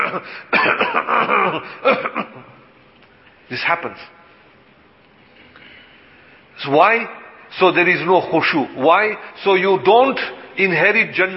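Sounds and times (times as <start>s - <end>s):
person coughing: 0.0s - 2.5s
speech: 0.1s - 2.6s, 3.5s - 4.2s, 6.6s - 11.3s.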